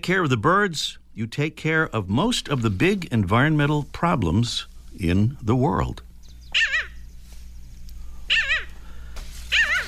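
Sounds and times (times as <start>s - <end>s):
speech: 0.0s - 6.1s
faint low hum: 0.0s - 9.8s
parasitic jaeger wavering wailing calls: 6.2s - 7.2s, 8.0s - 9.8s.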